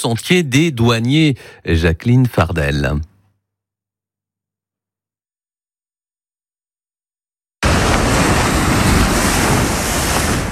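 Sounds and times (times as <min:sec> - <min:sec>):
speech: 0:00.0 - 0:03.1
crashing surf at a coastal headland: 0:07.6 - 0:10.4
wind roaring at a coastal headland: 0:07.6 - 0:10.4.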